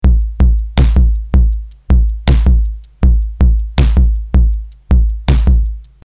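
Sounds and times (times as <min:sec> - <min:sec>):
drums: 0:00.0 - 0:06.0.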